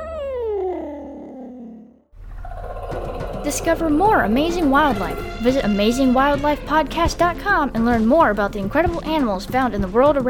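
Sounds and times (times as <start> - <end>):
endangered African wild cat yowling: 0.0 - 3.4
speech: 2.9 - 10.2.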